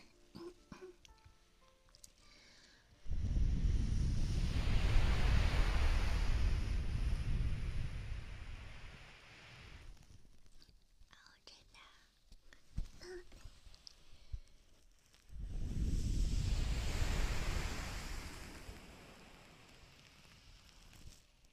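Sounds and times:
sea wind roaring: 3.1s - 9.9s, 15.3s - 19.9s
ocean waves surging: 3.6s - 9.8s, 15.8s - 19.6s.

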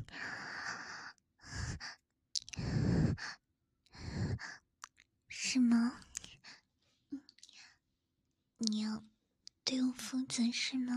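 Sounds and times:
heavy panting breaths: 0.0s - 4.6s
speech: 5.5s - 6.0s, 10.4s - 10.9s.

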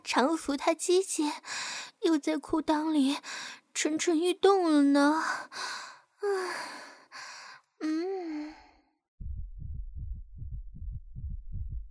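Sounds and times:
speech: 0.1s - 6.9s
breathy vocal gasps and sighs: 5.2s - 9.0s
deep heartbeat thumping: 9.2s - 11.8s.

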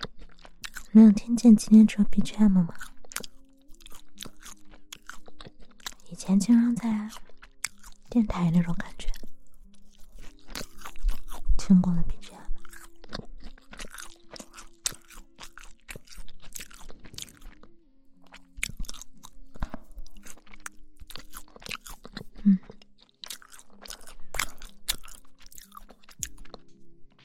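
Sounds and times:
person chewing and eating raspberry cake with tart raspberries: 0.0s - 27.2s
speech: 0.9s - 2.9s, 6.2s - 7.3s, 8.1s - 9.2s, 11.7s - 12.1s.

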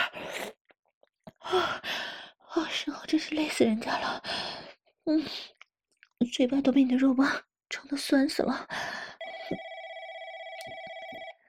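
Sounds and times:
speech: 1.5s - 2.0s, 2.6s - 5.6s, 6.2s - 9.0s
telephone ringing with a steady electronic ringtone: 9.2s - 11.4s.

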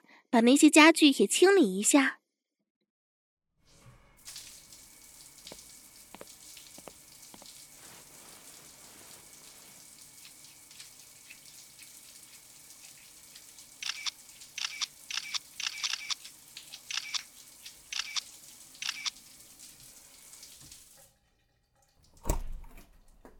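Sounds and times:
speech: 0.3s - 2.2s
running water of a shower: 3.6s - 22.2s
small clicks: 13.8s - 19.2s.

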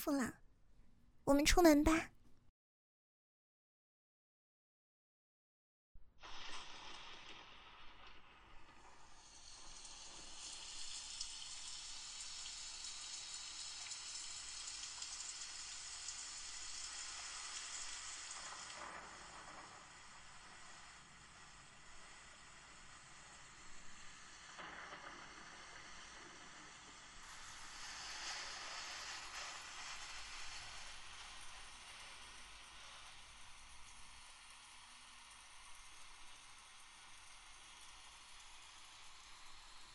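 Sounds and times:
speech: 0.0s - 0.4s, 1.3s - 2.1s
steady rain pouring on surfaces: 6.3s - 39.9s.

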